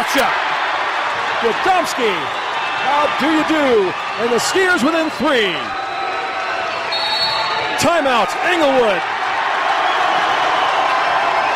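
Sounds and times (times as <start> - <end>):
large indoor basketball arena crowd cheering: 0.0 - 11.5
speech: 0.1 - 0.6, 1.4 - 5.8, 7.8 - 9.1.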